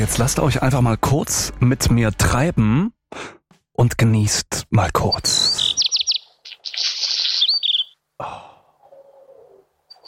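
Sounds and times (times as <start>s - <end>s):
speech: 0.0s - 5.7s
black redstart singing: 5.1s - 8.0s, 8.9s - 10.0s.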